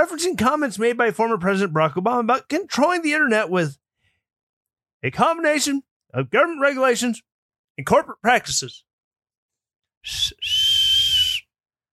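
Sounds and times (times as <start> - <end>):
speech: 0.0 - 3.8, 5.0 - 8.9, 10.0 - 10.6
whistle through the teeth: 10.0 - 11.6.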